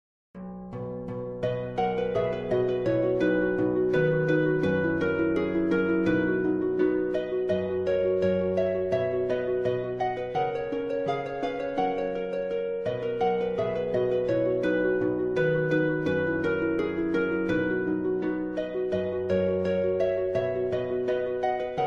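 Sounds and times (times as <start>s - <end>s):
harp etude: 0.4s - 21.8s.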